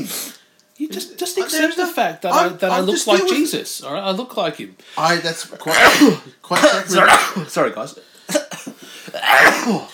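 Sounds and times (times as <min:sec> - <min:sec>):
speech: 0:00.8 - 0:08.4, 0:09.3 - 0:09.9
person sneezing: 0:05.7 - 0:07.5, 0:08.3 - 0:09.9.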